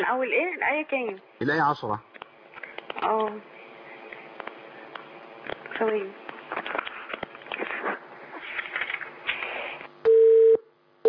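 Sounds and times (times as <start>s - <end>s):
speech: 0.0s - 2.1s, 3.0s - 3.5s, 5.8s - 6.2s
telephone busy tone after a call drops: 10.1s - 11.0s.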